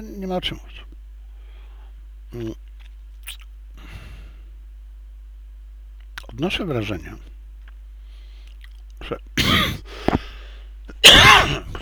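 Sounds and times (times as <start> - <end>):
speech: 0.0 - 0.9, 2.3 - 2.6, 6.4 - 7.3, 9.1 - 10.2
person coughing: 9.4 - 9.9, 11.0 - 11.8.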